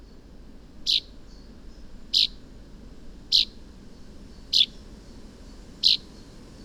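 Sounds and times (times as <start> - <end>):
common chaffinch bright high calls: 0.8 - 1.1, 2.1 - 2.4, 3.3 - 3.6, 4.4 - 4.8, 5.8 - 6.1.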